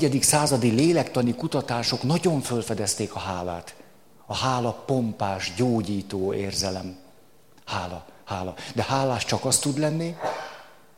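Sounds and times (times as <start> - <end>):
speech: 0.0 - 7.0, 7.7 - 10.4
sneeze: 10.2 - 10.9.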